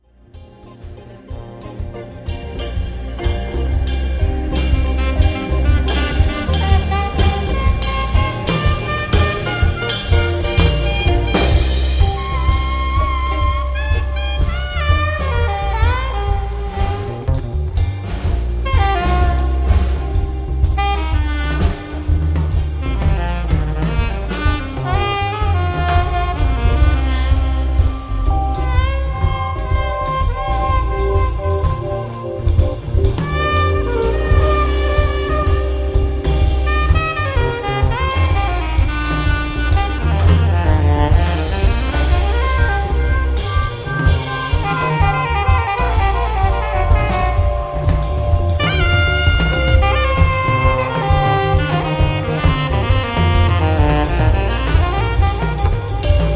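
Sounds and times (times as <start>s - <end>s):
pop reggae music: 0.1s - 26.0s, 27.1s - 56.3s.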